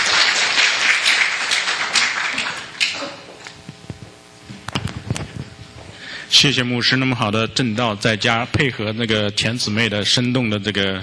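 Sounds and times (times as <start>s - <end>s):
church audience applauding: 0.0s - 3.3s
speech: 6.3s - 11.0s.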